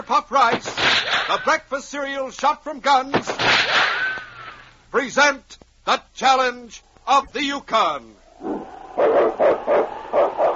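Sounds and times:
speech: 0.1 - 3.9, 4.9 - 9.8
lead sled dog barking: 9.0 - 10.5.

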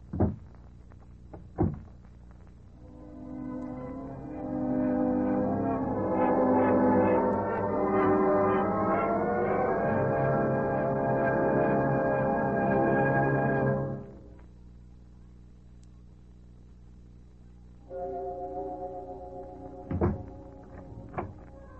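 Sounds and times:
door swinging shut with a solid thud: 0.1 - 0.5, 1.3 - 1.9, 19.9 - 21.4
sustained organ-like chords: 2.8 - 14.5, 17.8 - 21.7.

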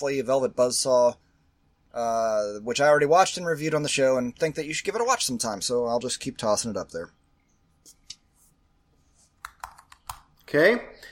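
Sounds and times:
speech: 0.0 - 1.3, 2.0 - 7.2, 10.5 - 11.0
fast typing on a computer keyboard: 9.4 - 10.3.

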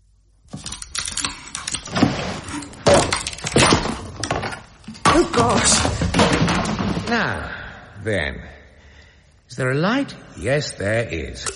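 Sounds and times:
locked door forced open with heavy thuds and cracking: 0.5 - 7.5
speech: 5.2 - 6.0, 7.1 - 8.6, 9.5 - 11.5.

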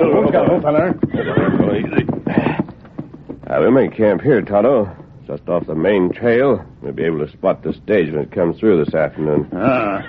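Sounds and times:
speech: 0.0 - 2.6, 3.5 - 10.0
horses neighing as pulled to a halt in a rocky canyon: 0.0 - 3.7, 9.1 - 10.0
horse hooves clopping in a rocky canyon: 0.0 - 10.0.

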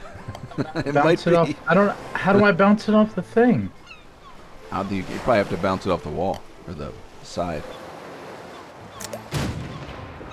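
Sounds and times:
laughter: 0.0 - 2.4
speech: 0.6 - 3.8, 4.7 - 7.8
video game cannon shot: 9.3 - 10.3.

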